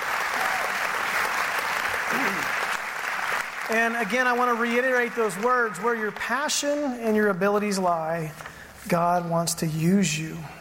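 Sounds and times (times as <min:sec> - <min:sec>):
audience applause: 0:00.0 - 0:06.8
speech: 0:03.7 - 0:10.6.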